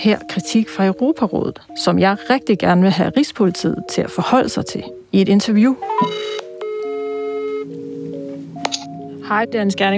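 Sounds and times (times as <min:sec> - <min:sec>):
speech: 0:00.0 - 0:06.4, 0:09.3 - 0:09.9
phone line clicks: 0:05.8 - 0:07.8
telephone ringing on an outgoing call: 0:05.8 - 0:07.8.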